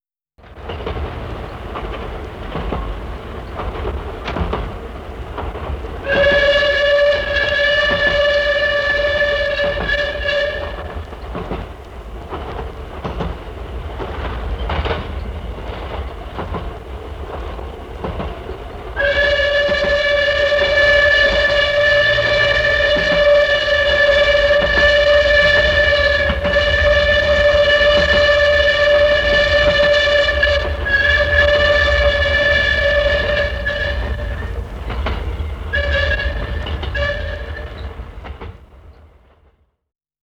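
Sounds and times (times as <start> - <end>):
steam tram: 0.4 - 39.9
steam tram whistle: 6.0 - 11.5, 19.0 - 38.0.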